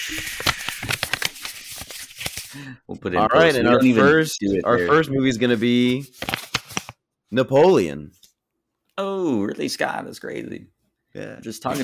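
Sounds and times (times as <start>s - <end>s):
speech: 0.0s - 0.4s, 2.6s - 6.3s, 7.3s - 8.2s, 9.0s - 11.8s
fake paper shuffling: 0.0s - 2.6s, 5.4s - 7.0s.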